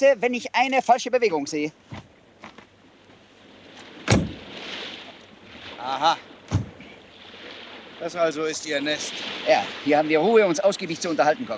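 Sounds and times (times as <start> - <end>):
speech: 0.0 - 2.1, 5.8 - 6.3, 8.0 - 11.5
car door slamming: 4.0 - 4.4, 6.5 - 6.9.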